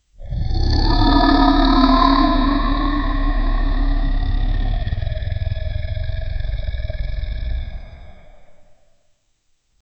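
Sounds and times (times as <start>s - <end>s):
dragon roar hovering: 0.2s - 8.9s.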